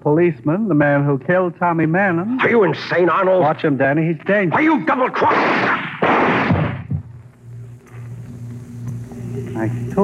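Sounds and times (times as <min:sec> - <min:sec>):
faint steady hum: 0:00.0 - 0:10.0
speech: 0:00.1 - 0:05.9, 0:09.6 - 0:10.0
gunshots: 0:05.2 - 0:06.9.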